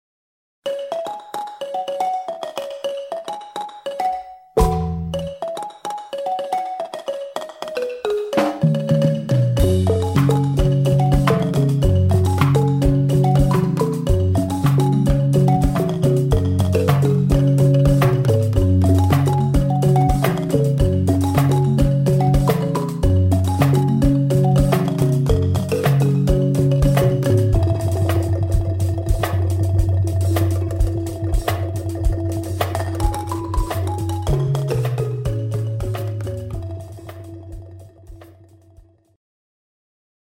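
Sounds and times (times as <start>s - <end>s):
balafon: 0.7s - 39.2s.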